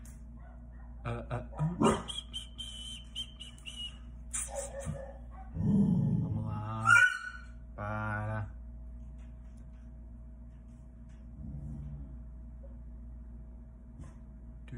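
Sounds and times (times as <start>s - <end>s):
steady low hum: 0.0s - 14.7s
dogs barking and yelping: 0.3s - 2.3s, 4.4s - 5.7s, 6.7s - 7.5s
speech: 1.0s - 2.0s.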